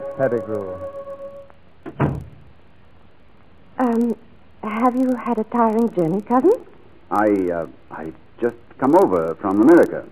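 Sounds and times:
speech: 0.2 - 1.0, 3.9 - 10.1
room door creaking as it swings open: 0.2 - 2.5
heavier dull thud: 1.9 - 2.5.

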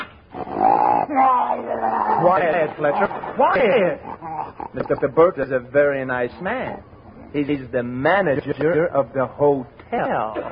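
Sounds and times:
dog whiny growl rising in pitch: 0.3 - 5.3, 6.4 - 7.4
speech: 1.2 - 4.1, 4.7 - 10.4.

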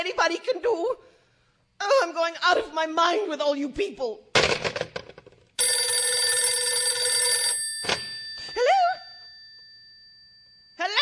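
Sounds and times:
speech: 0.0 - 1.2, 1.8 - 4.3
telephone bell ringing with a bright metallic trill: 5.6 - 10.7.

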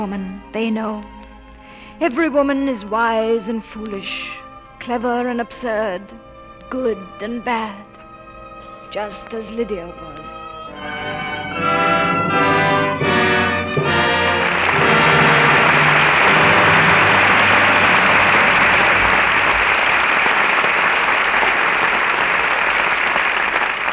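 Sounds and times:
speech: 0.0 - 1.2, 2.0 - 7.9, 8.9 - 10.2
orchestral chords: 2.3 - 21.3
large studio audience applauding after a dramatic performance: 13.3 - 23.9.

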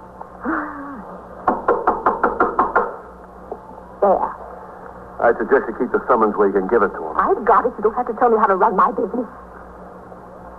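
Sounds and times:
firm knocking on a door: 1.4 - 3.1
speech: 4.0 - 4.4, 5.2 - 9.5.

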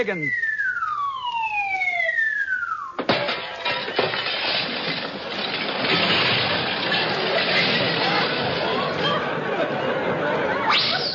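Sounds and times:
speech: 0.0 - 0.4
descending whistle of a diver dropping from a high board: 0.0 - 3.0, 10.6 - 11.1
crash of shattering glass as a diver hits a glass lake: 3.0 - 9.1
laughter: 7.1 - 11.1.

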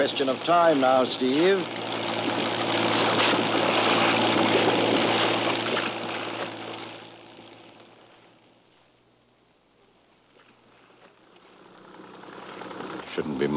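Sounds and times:
speech: 0.0 - 2.1
rushing water: 0.0 - 7.0
boat engine chugging heading into a river: 0.0 - 8.5, 11.0 - 13.5.

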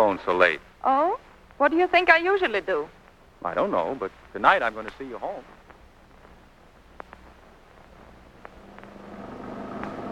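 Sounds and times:
speech: 0.0 - 5.6
faint clicks: 4.2 - 9.0
taxicab engine rumble during ride: 7.3 - 10.1
road noise: 7.9 - 10.1.

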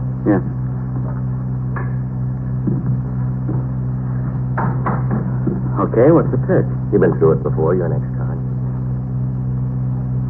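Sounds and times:
low mechanical hum: 0.0 - 10.2
speech: 0.2 - 0.6, 5.8 - 8.2
knocks on door: 2.6 - 3.7.

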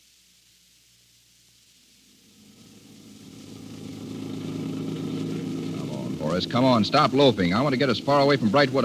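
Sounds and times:
car engine humming while driving along a road: 2.5 - 8.8
speech: 6.4 - 8.8.

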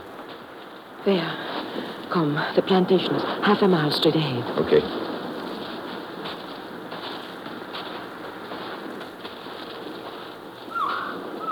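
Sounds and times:
steady hissing outdoor ambience at night: 0.0 - 11.5
speech: 1.0 - 5.1
warbling bird call at night: 10.7 - 11.5.

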